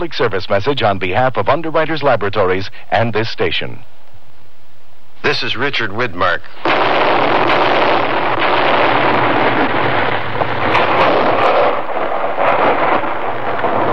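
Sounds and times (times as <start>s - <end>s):
speech: 0.0s - 4.0s, 5.2s - 7.9s
Forest Service artillery firing blank shells to clear avalanche snow in the Colorado Rocky Mountains: 6.6s - 13.9s.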